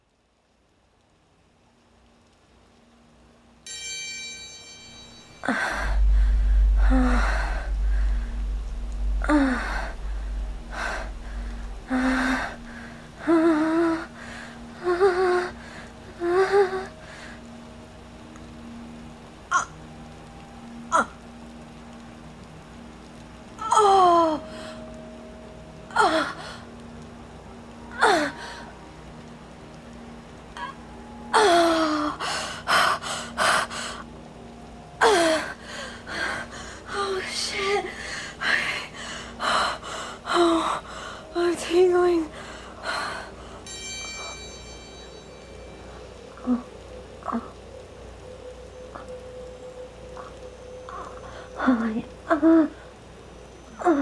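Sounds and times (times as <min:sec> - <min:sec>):
soundscape rain: 0:00.0 - 0:53.9.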